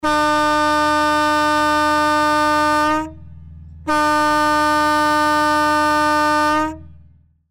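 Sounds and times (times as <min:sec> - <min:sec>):
fire fighting boat horn: 0:00.0 - 0:07.1.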